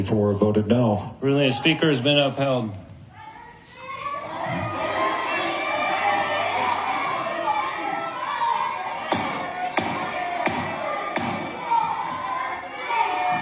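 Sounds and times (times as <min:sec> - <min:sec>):
speech: 0:00.0 - 0:02.8
large crowd of protesters shouting in the gallery of a legislative chamber: 0:03.2 - 0:13.4
sharp knocking thuds: 0:09.1 - 0:11.5.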